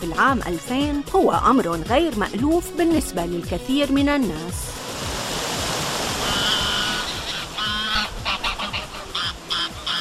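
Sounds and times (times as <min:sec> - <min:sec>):
speech: 0:00.0 - 0:04.8
flowing river water: 0:04.4 - 0:09.9
geese honking: 0:06.2 - 0:09.9.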